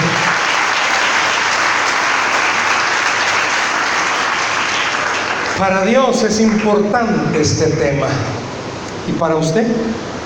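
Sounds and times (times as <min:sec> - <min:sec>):
large audience applauding: 0:00.0 - 0:06.8
speech: 0:05.6 - 0:08.4, 0:09.1 - 0:10.1.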